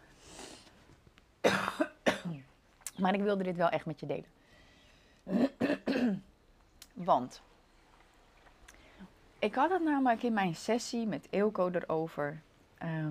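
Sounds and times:
faint breathing: 0:00.0 - 0:00.9, 0:04.4 - 0:05.3, 0:08.7 - 0:09.2
person coughing away from the microphone: 0:01.4 - 0:02.4, 0:05.3 - 0:06.3
speech: 0:03.0 - 0:04.4, 0:06.0 - 0:06.3, 0:07.0 - 0:07.5, 0:09.4 - 0:13.0.

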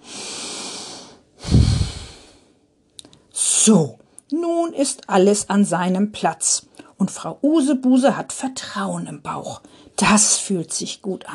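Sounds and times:
deep breath in and out: 0:00.0 - 0:02.6
speech: 0:01.5 - 0:01.8, 0:03.6 - 0:11.3.

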